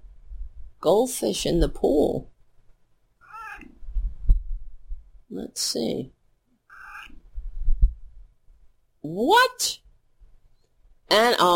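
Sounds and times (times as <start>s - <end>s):
speech: 0.8s - 2.3s, 5.3s - 6.2s, 9.0s - 9.8s, 11.1s - 11.5s
house cat meowing: 3.2s - 3.8s, 6.7s - 7.2s
soft low thumps: 3.8s - 5.1s, 7.3s - 8.3s.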